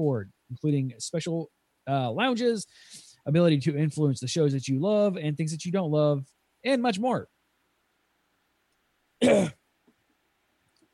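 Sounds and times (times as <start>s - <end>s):
speech: 0.0s - 7.4s, 9.2s - 9.6s
raspy cough: 9.2s - 9.6s.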